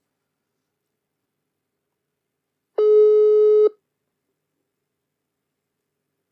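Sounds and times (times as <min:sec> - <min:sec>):
steady telephone ringback tone while dialing: 0:02.8 - 0:03.7.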